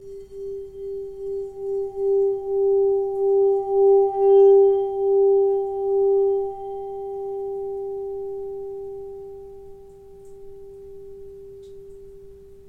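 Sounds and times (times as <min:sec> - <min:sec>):
Tibetan singing bowl: 0:00.0 - 0:12.6.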